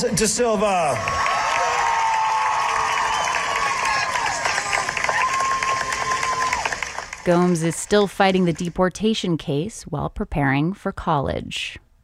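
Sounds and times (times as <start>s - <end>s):
speech: 0.0s - 1.3s, 7.2s - 11.8s
large crowd cheering and shouting: 0.0s - 8.8s
people clapping: 0.4s - 9.0s
people whooping: 0.6s - 7.2s.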